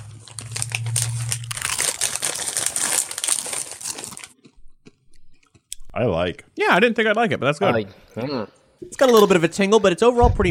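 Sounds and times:
low hum: 0.0s - 2.7s
crunching crisp curry-flavored tortilla chips: 0.0s - 5.7s
speech: 6.0s - 10.4s.

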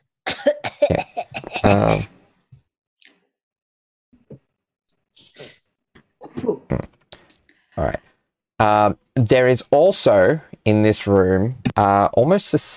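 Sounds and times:
rapid coughs ending in a throaty voiced hack: 0.3s - 2.1s
speech: 8.8s - 12.7s.

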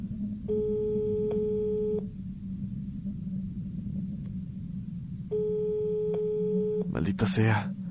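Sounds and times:
constant low rumble: 0.0s - 7.8s
telephone ringback tone after dialing a number: 0.5s - 2.1s, 5.3s - 6.9s
speech: 7.0s - 7.8s.

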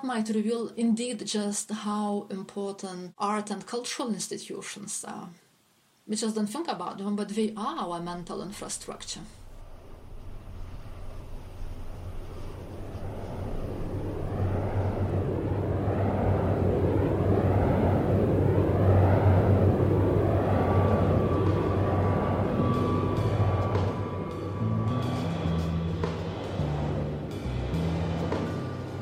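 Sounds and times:
speech: 0.0s - 5.4s, 6.1s - 9.4s
low continuous drone: 8.1s - 29.0s
wind turbine blades spinning through the air: 9.4s - 29.0s.

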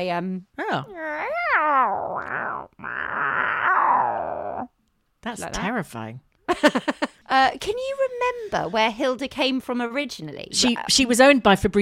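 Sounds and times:
speech: 0.0s - 3.3s, 5.2s - 11.8s
person imitating a yowling and growling cat: 0.6s - 4.8s.

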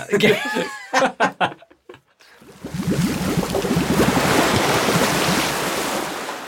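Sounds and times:
laughter: 0.0s - 2.0s
speech: 0.1s - 1.2s
ocean waves and splashing water: 2.5s - 6.4s.

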